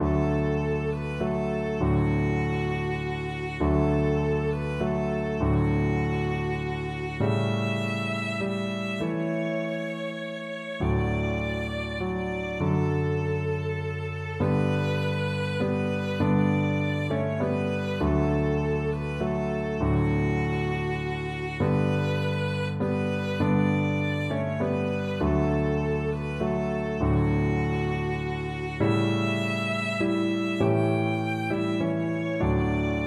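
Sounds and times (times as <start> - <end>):
violin playing a Christmas carol: 0.0 - 33.0.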